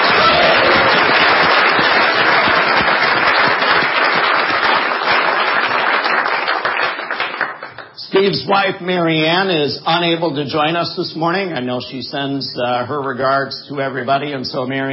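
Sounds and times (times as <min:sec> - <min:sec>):
crowd applauding at a campus event: 0:00.0 - 0:08.0
speech: 0:08.2 - 0:14.9.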